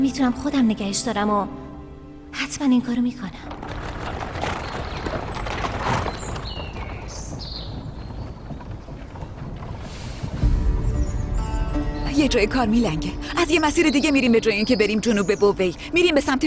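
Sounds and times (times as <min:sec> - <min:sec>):
speech: 0:00.0 - 0:01.7, 0:02.3 - 0:03.7, 0:12.2 - 0:16.4
dense continuous rolling noise: 0:02.9 - 0:16.4
hooves of a horse-drawn carriage clip-clopping: 0:03.4 - 0:11.5.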